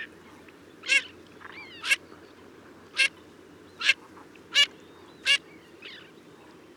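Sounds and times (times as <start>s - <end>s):
garganey Spatula querquedula calling: 0.9s - 1.1s, 2.9s - 3.1s, 3.8s - 5.4s.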